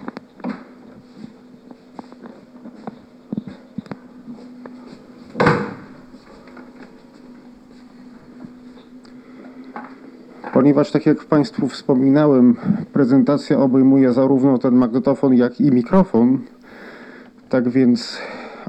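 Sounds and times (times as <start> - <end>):
steady low hum: 0.0 - 18.6
door thudding shut: 5.4 - 6.0
speech: 10.6 - 16.5, 17.5 - 18.6.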